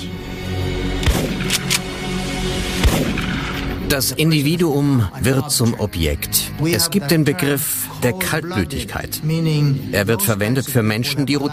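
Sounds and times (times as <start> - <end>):
sharp gunshots: 1.0 - 1.9, 2.8 - 3.7
speech: 3.9 - 11.5.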